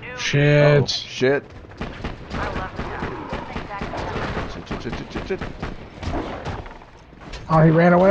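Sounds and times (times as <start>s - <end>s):
speech: 0.3s - 1.6s, 4.8s - 6.5s, 7.5s - 8.0s
rapid pistol fire in a video game: 1.8s - 6.8s.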